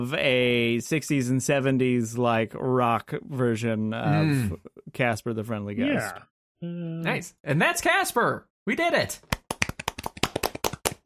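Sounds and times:
speech: 0.0 - 9.4
hand claps: 9.1 - 11.0.

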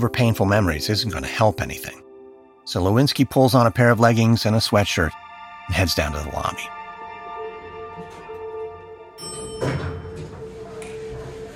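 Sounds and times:
speech: 0.0 - 2.0, 2.7 - 6.8
elevator doors sliding open: 8.0 - 11.5.

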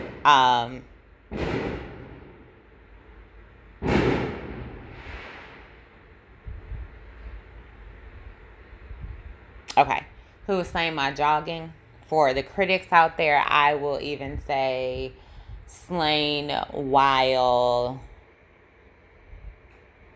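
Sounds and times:
fireworks booming outdoors: 0.0 - 0.6, 1.2 - 7.0
low hum: 0.0 - 20.1
speech: 0.2 - 1.6, 9.8 - 18.1
quieter pops: 1.2 - 6.9.

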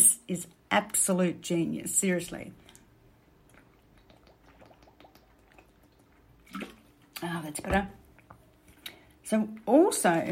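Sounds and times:
speech: 0.0 - 2.6, 7.2 - 8.0, 9.3 - 10.3
person sipping and slurping water from a glass: 2.6 - 6.9.

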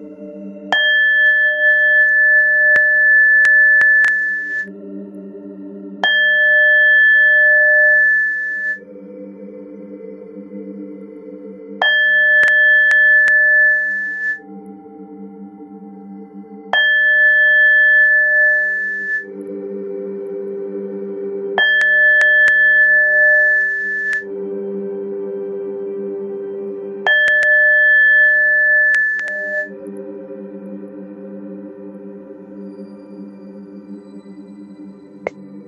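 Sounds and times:
soft low drone: 0.0 - 35.6
meditation bowl chimes ringing: 0.7 - 4.7, 6.0 - 8.8, 11.8 - 14.6, 16.6 - 19.5, 21.6 - 24.3, 27.1 - 29.8.

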